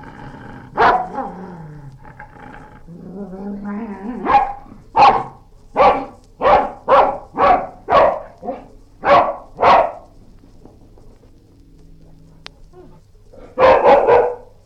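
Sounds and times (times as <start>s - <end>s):
dog growling low: 0.0s - 14.6s
dog barking angrily: 0.8s - 1.4s, 4.2s - 10.1s, 12.8s - 14.6s.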